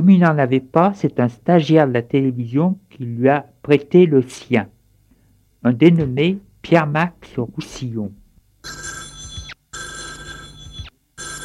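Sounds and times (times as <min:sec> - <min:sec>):
speech: 0:00.0 - 0:04.8, 0:05.6 - 0:09.0
telephone ringing with a bright warbling electronic tone: 0:08.6 - 0:11.4.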